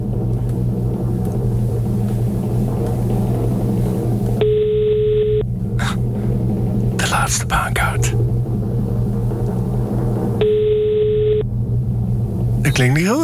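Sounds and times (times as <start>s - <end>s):
low rumble: 0.0s - 13.2s
telephone ringing tone while calling a number: 4.4s - 5.4s, 10.4s - 11.4s
speech: 12.8s - 13.2s.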